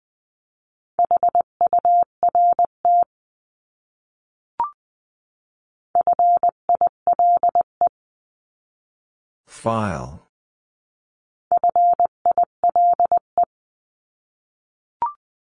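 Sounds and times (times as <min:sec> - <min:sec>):
Morse code beeps in a steady mid-pitched tone: 0:01.0 - 0:03.0, 0:06.0 - 0:07.7, 0:11.5 - 0:13.5
speech: 0:09.6 - 0:10.2.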